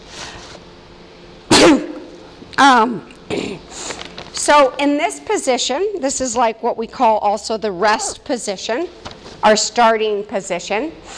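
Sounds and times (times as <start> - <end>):
person sneezing: 1.5 - 2.3, 3.3 - 3.8
speech: 2.6 - 3.8, 4.5 - 11.1.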